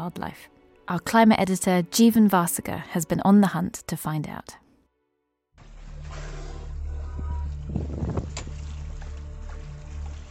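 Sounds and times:
speech: 0.0s - 4.6s
boat engine droning on open water off the coast of Portugal: 5.6s - 10.3s
rushing water splash noise: 5.6s - 10.3s
loud gusting wind buffeting the microphone: 7.6s - 8.6s.

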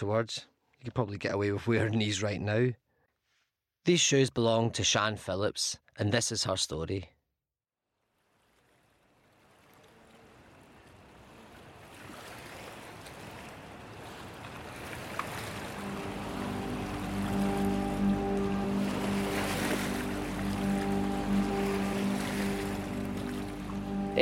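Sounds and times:
speech: 0.0s - 2.8s, 3.8s - 7.2s
water slopping against boats at night: 8.3s - 24.1s.

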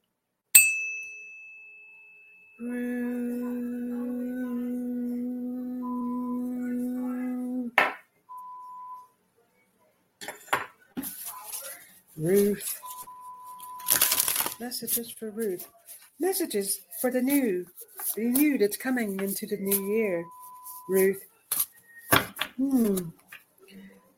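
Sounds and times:
small bell ding: 0.6s - 2.6s
speech: 2.6s - 3.0s, 12.2s - 12.8s, 14.6s - 21.3s, 22.6s - 23.2s
steady low hum: 2.6s - 7.8s.

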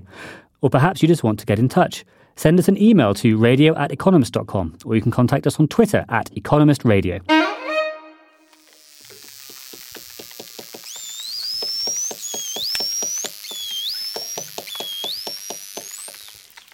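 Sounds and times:
speech: 0.6s - 7.6s
bottlenose dolphin high sweeping whistles underwater: 10.9s - 16.4s.

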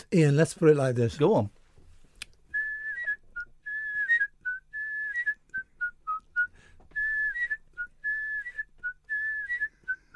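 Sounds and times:
speech: 0.0s - 1.6s
person whistling a TV theme tune melody: 2.5s - 10.1s.

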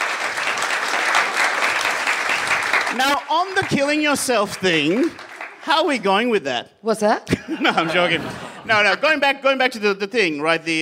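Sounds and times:
crowd applauding: 0.0s - 6.4s
speech: 3.0s - 10.8s
laughter: 7.3s - 9.3s.

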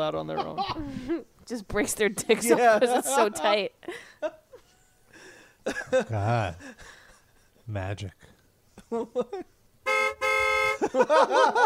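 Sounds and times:
speech: 0.0s - 4.4s, 5.6s - 7.0s, 7.7s - 9.6s, 10.8s - 11.6s
laughter: 2.3s - 4.8s, 5.6s - 7.6s, 8.8s - 9.5s, 10.8s - 11.6s
car horn chirps from locking a car: 9.8s - 10.9s.

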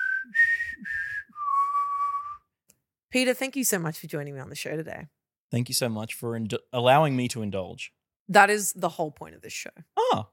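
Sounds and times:
person whistling a film theme tune: 0.0s - 2.5s
speech: 3.1s - 10.3s.

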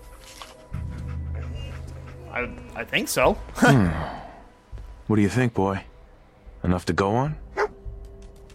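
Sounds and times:
dog panting: 0.0s - 2.9s
speech: 2.3s - 4.2s, 5.1s - 5.9s, 6.6s - 7.4s.

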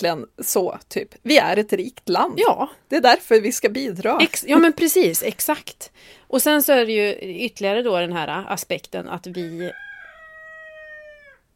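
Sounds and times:
speech: 0.0s - 9.9s
rooster crowing: 9.4s - 11.5s.

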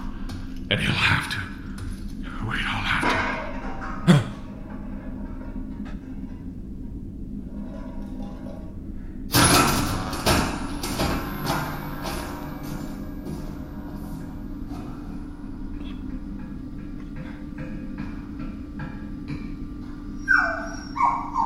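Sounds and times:
steady low hum: 0.0s - 21.4s
speech: 0.7s - 1.5s, 2.4s - 3.2s
dog whimpering and yelping: 20.2s - 21.4s.

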